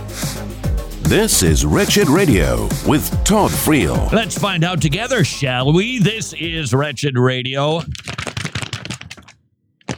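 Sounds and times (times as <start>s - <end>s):
speech: 1.1s - 8.1s
manila paper envelope rustling and crinkling being handled: 7.8s - 9.9s.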